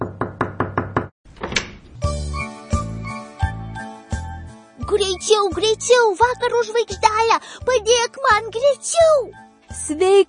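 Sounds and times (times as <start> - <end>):
knocking on a door: 0.0 - 1.6
speech: 4.9 - 10.2.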